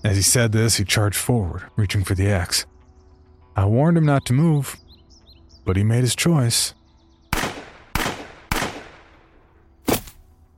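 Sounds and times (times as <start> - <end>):
speech: 0.0 - 2.7, 3.6 - 4.8, 5.6 - 6.8
handgun shots: 7.4 - 9.1, 9.9 - 10.2.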